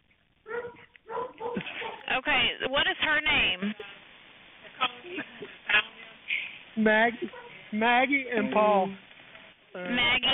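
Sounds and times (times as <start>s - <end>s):
dogs barking in the background of a 911 phone call: 0.5s - 2.1s, 7.3s - 7.6s
speech: 2.2s - 3.9s, 6.8s - 9.0s, 9.8s - 10.3s.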